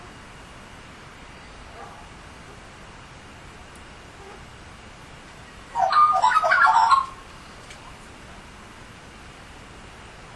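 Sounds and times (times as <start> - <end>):
Australian magpie warbling: 5.7 - 7.2.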